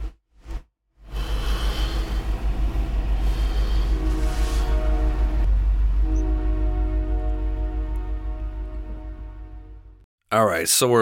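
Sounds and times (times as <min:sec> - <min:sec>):
train rumbling past: 0:01.1 - 0:10.0
horn-like tonal bands: 0:03.1 - 0:10.0
speech: 0:10.4 - 0:11.0.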